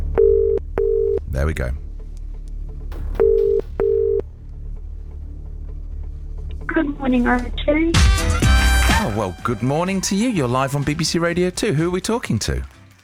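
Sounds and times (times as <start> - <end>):
telephone ringing tone down the line: 0.2 - 1.2, 3.2 - 4.2
speech: 1.4 - 1.8, 6.8 - 8.4, 9.0 - 12.8.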